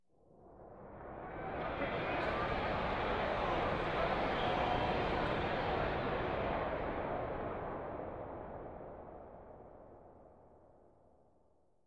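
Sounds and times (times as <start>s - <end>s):
sports arena crowd in transit: 1.4s - 8.2s.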